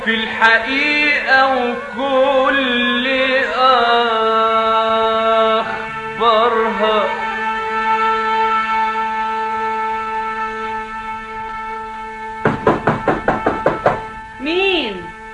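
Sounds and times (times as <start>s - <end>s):
speech: 0.0s - 4.2s
steady hum: 0.0s - 15.3s
knocking on a wooden door: 12.4s - 14.1s.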